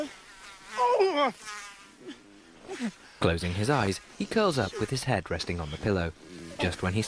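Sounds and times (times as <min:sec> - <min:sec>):
mosquito whining buzz: 0:00.0 - 0:06.9
speech: 0:00.9 - 0:07.0.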